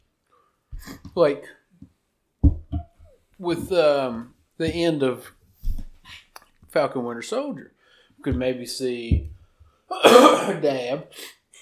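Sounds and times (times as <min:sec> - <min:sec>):
speech: 0:01.2 - 0:01.9, 0:03.4 - 0:05.4, 0:06.8 - 0:09.3, 0:09.9 - 0:11.4
person coughing: 0:09.9 - 0:10.7.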